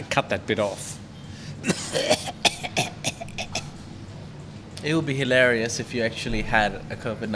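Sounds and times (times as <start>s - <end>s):
speech: 0.2s - 1.0s, 1.6s - 2.5s, 4.8s - 7.3s
person coughing: 1.6s - 3.8s
throat clearing: 1.6s - 3.8s.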